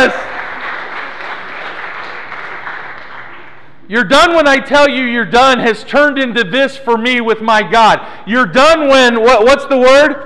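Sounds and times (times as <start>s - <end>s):
speech: 0.0s - 0.3s, 3.9s - 10.2s
audience applause: 0.0s - 3.7s.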